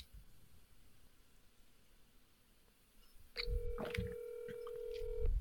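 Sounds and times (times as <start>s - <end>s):
telephone dialing tone beep: 3.4s - 5.3s.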